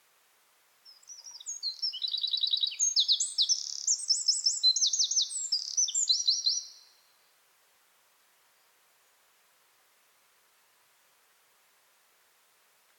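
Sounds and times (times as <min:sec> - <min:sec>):
Eurasian wren Troglodytes troglodytes song with rattling trills: 0:00.9 - 0:06.9.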